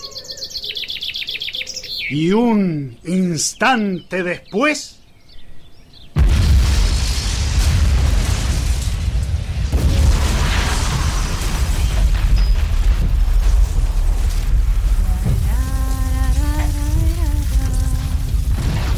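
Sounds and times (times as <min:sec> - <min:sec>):
speech: 0:02.1 - 0:05.0
loud explosion with heavy sustained roar and rumble: 0:06.2 - 0:18.9.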